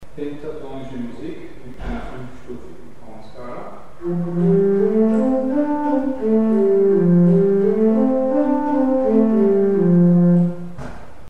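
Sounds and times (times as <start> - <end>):
pentatonic melody: 4.0 - 10.8.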